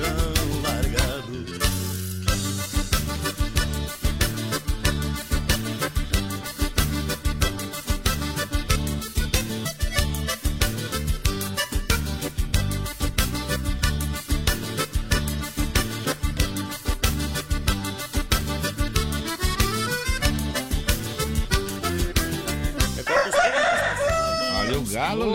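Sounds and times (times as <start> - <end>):
lively band music with a steady bouncing beat: 0.0 - 25.3
rooster crowing loudly: 23.0 - 24.8.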